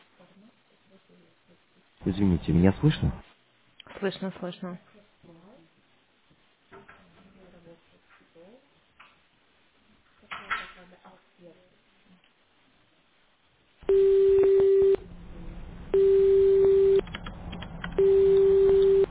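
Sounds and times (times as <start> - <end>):
speech: 0.9 - 3.3, 4.0 - 4.9
telephone ringback tone as a call connects: 13.8 - 15.0, 15.9 - 17.0, 18.0 - 19.1.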